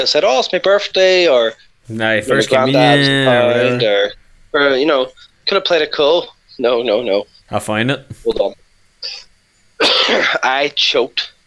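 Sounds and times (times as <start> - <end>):
speech: 0.0 - 9.2, 9.8 - 11.4
loud rasping throaty coughs: 9.8 - 10.4.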